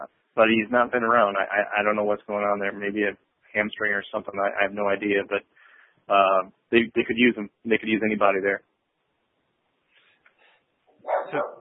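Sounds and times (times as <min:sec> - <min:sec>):
speech: 0:00.0 - 0:08.7, 0:11.3 - 0:11.5
dog barking: 0:11.0 - 0:11.5.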